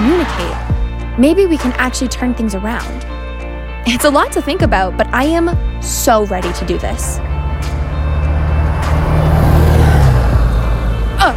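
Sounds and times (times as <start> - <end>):
speech: 0.3 - 3.1, 3.8 - 7.3
large vehicle engine drone: 5.4 - 11.3.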